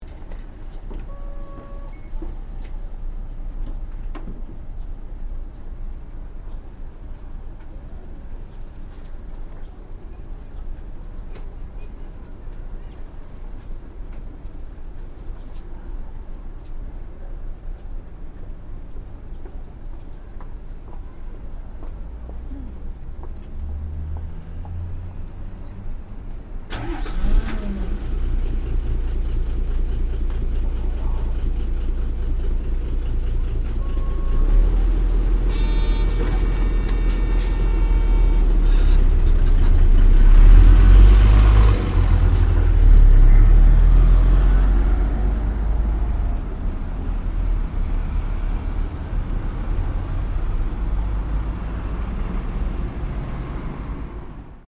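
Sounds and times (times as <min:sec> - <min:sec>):
bus interior ambience: 0:00.0 - 0:54.6.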